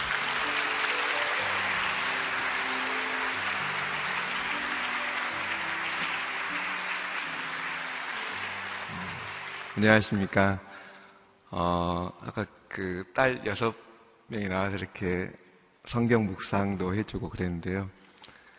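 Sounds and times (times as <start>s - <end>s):
audience applause welcoming a speaker: 0.0s - 10.4s
speech: 9.8s - 10.7s, 11.5s - 18.0s.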